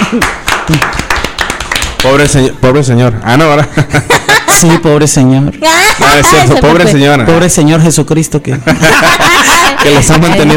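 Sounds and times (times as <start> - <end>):
scattered applause from a small group: 0.0 - 2.4
speech: 0.1 - 1.1, 2.0 - 10.5
laughter: 3.6 - 5.0, 5.8 - 7.0, 8.5 - 10.5.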